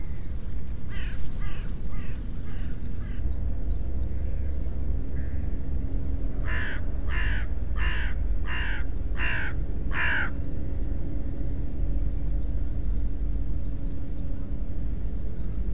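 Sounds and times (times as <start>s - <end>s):
constant low background rumble: 0.0s - 15.7s
bird giving harsh hoarse caws: 0.9s - 3.3s, 6.4s - 10.4s.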